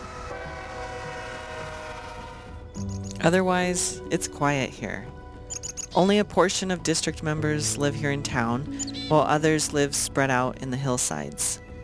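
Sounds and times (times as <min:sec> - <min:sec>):
freight train horn blaring: 0:00.0 - 0:02.7
speech: 0:03.2 - 0:05.2, 0:06.0 - 0:11.6.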